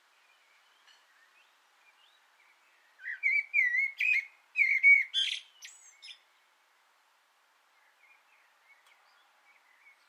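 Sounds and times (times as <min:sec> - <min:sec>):
common blackbird singing a fluty warbling song from an antenna: 0:00.0 - 0:06.6, 0:07.6 - 0:10.0.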